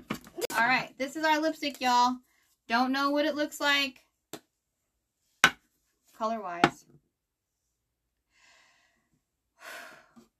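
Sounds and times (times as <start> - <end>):
speech: 0.6 - 4.0, 6.2 - 6.9
heavy breathy exhalations: 8.3 - 10.3.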